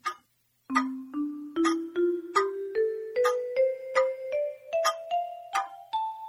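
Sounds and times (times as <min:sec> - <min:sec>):
clock chiming the hour in bright bell-like notes: 0:01.6 - 0:06.2.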